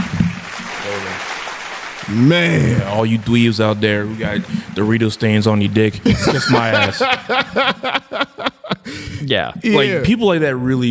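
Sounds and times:
crowd applause: 0:00.0 - 0:08.4
laughter: 0:02.1 - 0:10.1
speech: 0:02.1 - 0:10.8.

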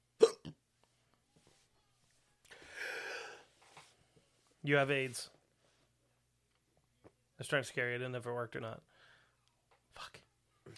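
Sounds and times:
hiccups: 0:00.2 - 0:00.6
speech: 0:04.6 - 0:05.4, 0:07.4 - 0:08.9.

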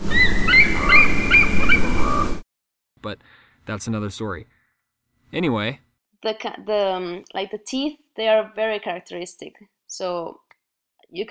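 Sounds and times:
eagle calling with high squeaky piping notes: 0:00.0 - 0:02.4
speech: 0:03.0 - 0:04.6, 0:05.3 - 0:10.4.

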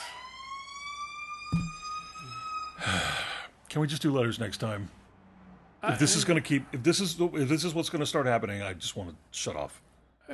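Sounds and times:
wailing emergency vehicle siren outside: 0:00.0 - 0:03.3
thump: 0:01.5 - 0:01.8
speech: 0:03.7 - 0:05.0, 0:05.8 - 0:10.3.

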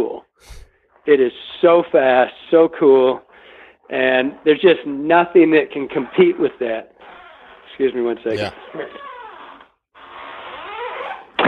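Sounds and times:
speech: 0:00.4 - 0:03.3, 0:03.9 - 0:06.9, 0:07.8 - 0:09.1
squeaky door creaking open: 0:07.0 - 0:07.7, 0:08.8 - 0:11.4.

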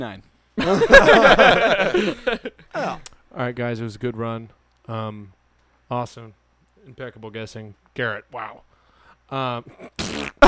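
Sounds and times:
speech: 0:00.0 - 0:08.7, 0:09.3 - 0:10.3
laughter: 0:00.6 - 0:02.6
buzzy and sputtering fart sound effects: 0:09.7 - 0:10.4.

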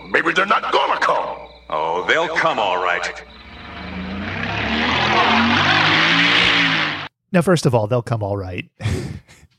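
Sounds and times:
speech: 0:00.4 - 0:00.7, 0:02.1 - 0:03.4, 0:07.3 - 0:09.1
loud truck driving past: 0:03.2 - 0:07.1.

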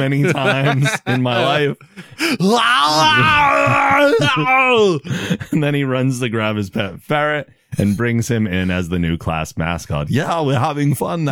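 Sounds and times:
laughter: 0:00.0 - 0:05.8
speech: 0:00.0 - 0:11.3
man screaming in a movie: 0:02.2 - 0:05.1.

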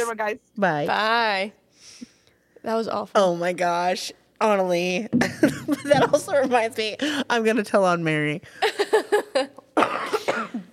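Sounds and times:
speech: 0:00.0 - 0:09.6
person coughing into a microphone: 0:09.8 - 0:10.7.

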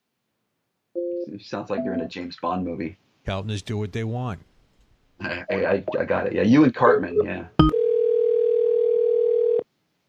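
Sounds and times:
speech: 0:01.2 - 0:04.5, 0:05.2 - 0:07.7
telephone dial tone during an unanswered call: 0:07.7 - 0:09.6.

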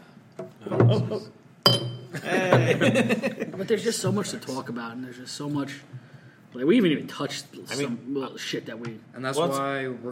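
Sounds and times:
speech: 0:00.6 - 0:10.0
glasses clinking in a toast: 0:01.6 - 0:02.1
laughter: 0:02.1 - 0:03.9.

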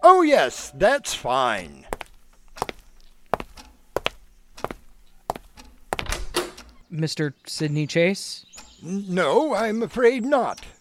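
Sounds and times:
speech: 0:00.1 - 0:01.9, 0:06.9 - 0:10.8
wooden door being opened with latch clicks: 0:02.3 - 0:03.9, 0:04.5 - 0:06.9, 0:08.5 - 0:08.9.

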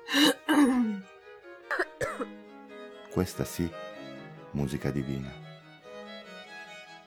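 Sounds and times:
person coughing: 0:00.1 - 0:01.0, 0:01.7 - 0:02.3
person clearing throat: 0:00.2 - 0:01.0, 0:01.7 - 0:02.3
speech: 0:03.2 - 0:03.8, 0:04.6 - 0:05.4.

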